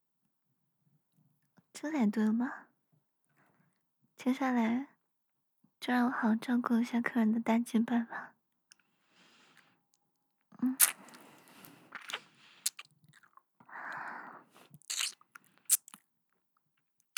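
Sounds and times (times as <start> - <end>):
speech: 1.8 - 2.7, 4.2 - 4.9, 5.8 - 8.3, 10.6 - 11.0
crunchy biting and chewing of food: 10.6 - 13.4, 14.6 - 16.0.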